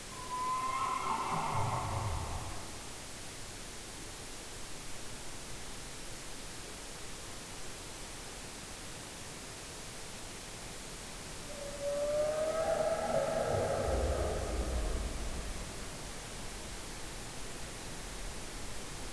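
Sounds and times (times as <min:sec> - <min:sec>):
creepy ambience: 0:00.0 - 0:03.0, 0:11.3 - 0:18.9.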